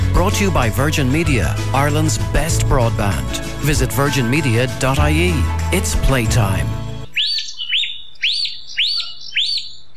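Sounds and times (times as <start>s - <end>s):
speech: 0.2s - 6.8s
bird chirping at dawn in Killarney National Park, Ireland: 7.0s - 9.9s.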